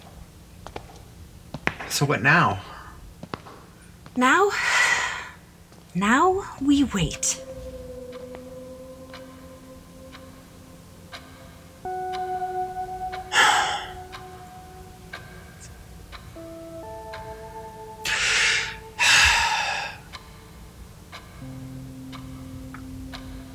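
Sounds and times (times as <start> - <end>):
speech: 1.9 - 2.7, 4.2 - 4.8, 6.0 - 7.5
soft sustained tones humming: 3.0 - 23.5
clock ticking: 6.0 - 23.5
loud breathy gasps: 18.1 - 20.1.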